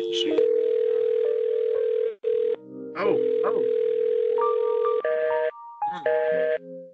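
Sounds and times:
person speaking: 0:00.0 - 0:00.6, 0:03.0 - 0:03.7
steady electronic telephone answering machine tones: 0:00.0 - 0:05.5.

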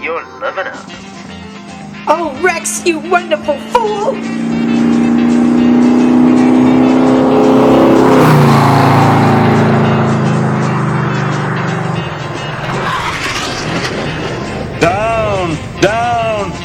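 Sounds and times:
speech: 0:00.0 - 0:01.2, 0:02.0 - 0:04.6
car engine roaring at high speed while swerving: 0:00.8 - 0:16.6
car tire squeals: 0:02.0 - 0:14.8.

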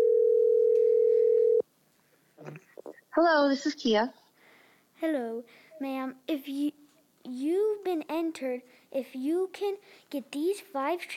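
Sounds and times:
telephone dial tone while a call is being placed: 0:00.0 - 0:01.6
speech: 0:03.2 - 0:04.2, 0:05.0 - 0:11.1.

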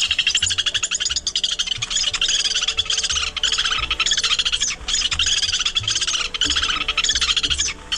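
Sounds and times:
Lewis's woodpecker harsh chattering call: 0:00.0 - 0:07.9.

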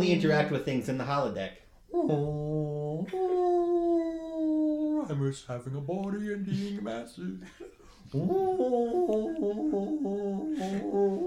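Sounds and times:
speech: 0:00.0 - 0:03.6, 0:05.0 - 0:11.2
person imitating whale noises with a long moaning vocal tone: 0:01.9 - 0:05.3, 0:08.1 - 0:11.2.

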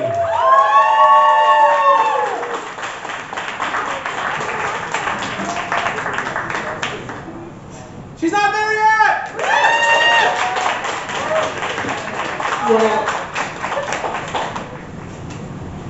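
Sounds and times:
crowd at a poetry competition whooping and cheering: 0:00.0 - 0:06.2, 0:09.3 - 0:14.8
crowd at a poetry competition clapping: 0:01.4 - 0:07.3, 0:09.2 - 0:15.4.

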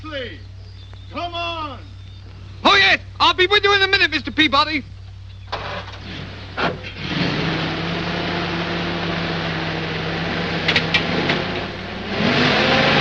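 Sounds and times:
speech: 0:00.0 - 0:00.5, 0:01.1 - 0:02.0, 0:02.6 - 0:05.0
car engine starting with clunks: 0:05.5 - 0:12.9.

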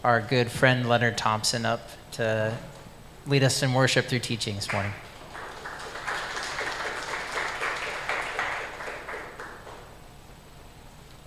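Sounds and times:
speech: 0:00.0 - 0:05.1
audience applauding: 0:04.6 - 0:10.0.

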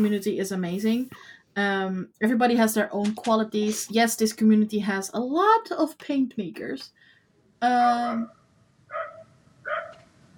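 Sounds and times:
speech: 0:00.0 - 0:09.1
dog barking outside: 0:08.9 - 0:10.1.

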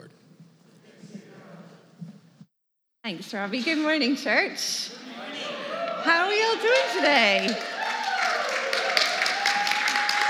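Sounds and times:
laughter: 0:00.0 - 0:02.1, 0:03.2 - 0:10.2
speech: 0:03.1 - 0:05.0, 0:06.0 - 0:07.7
crowd applauding: 0:03.4 - 0:10.2.

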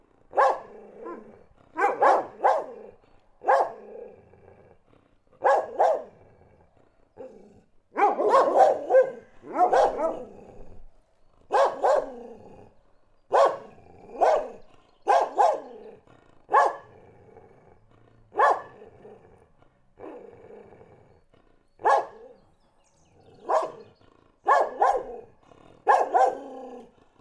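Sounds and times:
dog barking: 0:00.3 - 0:03.9, 0:05.4 - 0:06.2, 0:07.9 - 0:10.3, 0:11.5 - 0:12.2, 0:13.3 - 0:15.9, 0:16.5 - 0:16.9, 0:18.3 - 0:18.8, 0:21.8 - 0:22.4, 0:23.3 - 0:26.6.

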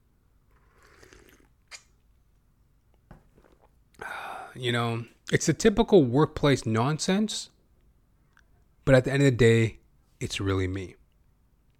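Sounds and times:
slurping sip of hot coffee: 0:00.5 - 0:02.0
speech: 0:04.6 - 0:07.6, 0:08.8 - 0:11.0.

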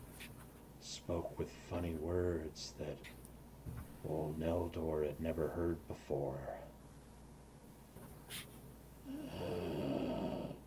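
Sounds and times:
speech: 0:01.1 - 0:06.7, 0:09.1 - 0:09.9
heavy breathing with a snoring snorting quality: 0:09.1 - 0:10.6.

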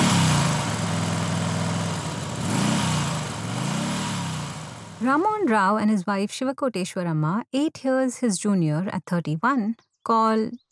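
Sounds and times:
small scooter engine revving while ridden down mud roads: 0:00.0 - 0:05.5
speech: 0:05.0 - 0:10.6.

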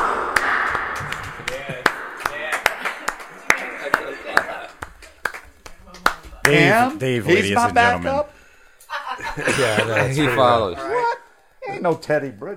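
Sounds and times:
hand claps with tail: 0:00.0 - 0:07.0
laughter: 0:02.4 - 0:04.8, 0:08.9 - 0:11.4
speech: 0:06.5 - 0:08.3, 0:09.4 - 0:11.0, 0:11.8 - 0:12.5.

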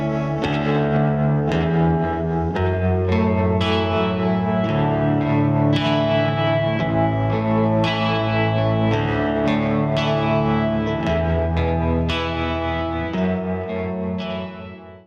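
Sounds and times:
clean guitars accompaniment: 0:00.0 - 0:15.0.

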